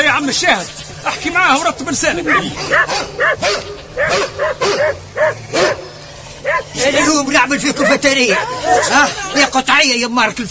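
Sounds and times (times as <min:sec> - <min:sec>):
speech: 0:00.0 - 0:10.4
dog barking in sharp yaps: 0:02.3 - 0:07.2, 0:07.8 - 0:09.1.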